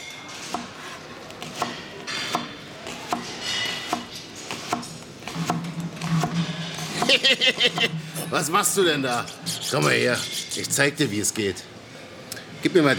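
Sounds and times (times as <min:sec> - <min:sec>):
onions chopped with a knife: 0:00.4 - 0:07.2
laughter: 0:06.9 - 0:08.3
speech: 0:07.2 - 0:11.8, 0:12.6 - 0:12.9.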